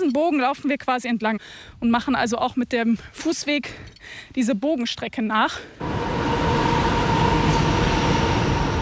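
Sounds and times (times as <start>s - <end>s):
speech: 0.0s - 6.3s
train rumbling past overhead on the Münstener Brücke railway bridge: 5.8s - 8.8s.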